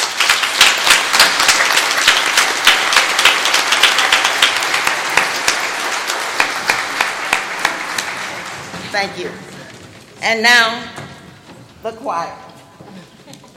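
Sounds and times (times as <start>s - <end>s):
large crowd applauding: 0.0s - 9.9s
speech: 9.0s - 9.5s, 10.2s - 11.0s, 11.8s - 12.4s.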